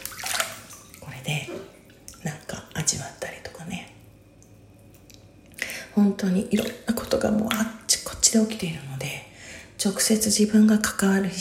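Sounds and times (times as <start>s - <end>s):
water sloshing and splashing in a bathtub: 0.0s - 8.8s
speech: 6.0s - 9.2s, 9.8s - 11.4s.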